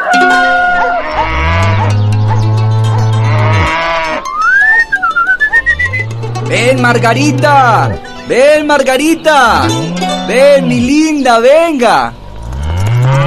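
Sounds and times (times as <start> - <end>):
cows mooing in a stable in the morning: 0.1 - 8.1, 8.8 - 11.2, 11.8 - 13.2
higher animal calls and bleats in a stable: 0.9 - 1.9, 2.9 - 4.3, 5.6 - 8.0, 9.0 - 11.1, 12.2 - 13.2
speech: 6.9 - 12.2.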